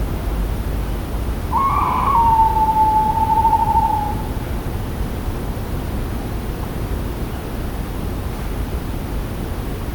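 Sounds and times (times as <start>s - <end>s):
low rumbling background noise: 0.0s - 9.9s
tawny owl Strix aluco hooting: 1.5s - 4.4s.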